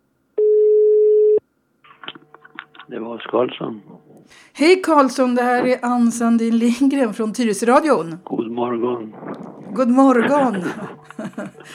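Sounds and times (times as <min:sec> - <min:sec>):
telephone ringing tone while calling someone: 0:00.4 - 0:01.4
speech: 0:02.9 - 0:11.7
laughter: 0:10.0 - 0:11.7.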